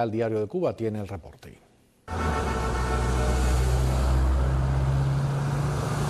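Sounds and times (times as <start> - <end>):
speech: 0.0 - 2.5
broadband road noise: 2.1 - 6.0
several classic cars driving past on a seaside avenue: 2.1 - 6.0.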